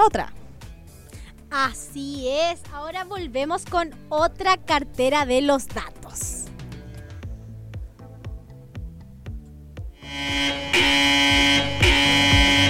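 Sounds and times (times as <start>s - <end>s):
speech: 0.0s - 0.4s, 1.5s - 6.4s, 10.2s - 11.5s
quick rhythmic ticking beat: 6.3s - 12.6s
loud harsh alarm buzzer blaring in pulsing bursts: 10.0s - 12.6s.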